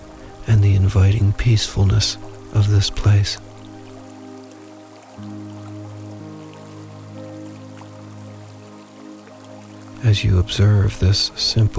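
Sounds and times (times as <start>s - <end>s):
babbling brook flowing beside a tree: 0.0s - 11.7s
speech: 0.5s - 3.4s, 10.0s - 11.7s.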